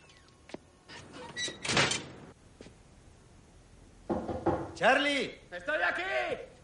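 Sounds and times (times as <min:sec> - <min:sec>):
apartment door shutting: 0:00.9 - 0:02.2
dull knocks: 0:04.1 - 0:04.8
speech: 0:04.8 - 0:06.5.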